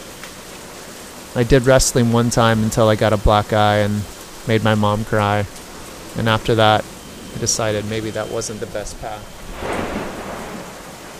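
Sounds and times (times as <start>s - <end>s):
heavy rain pouring: 0.0s - 11.1s
speech: 1.4s - 5.6s, 6.2s - 9.8s
deep thunder rumble: 4.0s - 11.1s.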